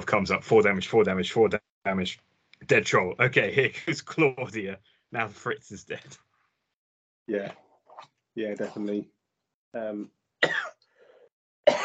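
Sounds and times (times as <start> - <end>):
speech: 0.1 - 6.3, 7.3 - 10.6
coughing: 8.5 - 9.0, 10.4 - 10.8, 11.7 - 11.8.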